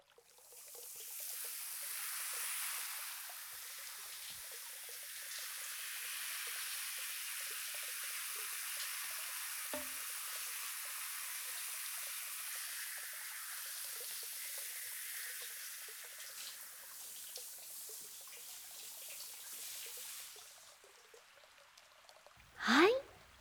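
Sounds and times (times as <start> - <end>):
shower spray rinsing a head of hair: 0.8 - 20.4.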